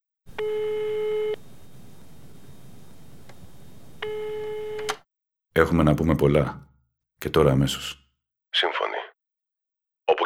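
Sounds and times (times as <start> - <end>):
electronic telephone ringback tone as a call is placed from a hotel room: 0.3 - 1.4, 4.0 - 5.0
speech: 0.4 - 0.7, 5.6 - 8.8.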